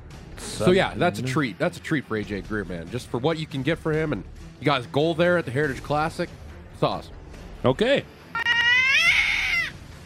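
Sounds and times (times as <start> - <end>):
speech: 0.6 - 8.2
cat screech: 8.3 - 9.8.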